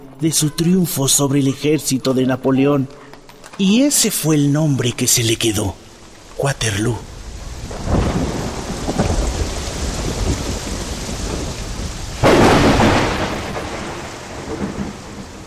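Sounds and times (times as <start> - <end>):
speech: 0.2 - 5.8, 6.4 - 7.9
heavy rain: 3.4 - 15.4
low rolling thunder: 6.4 - 15.4
loud sharp thunderclap: 7.4 - 15.4.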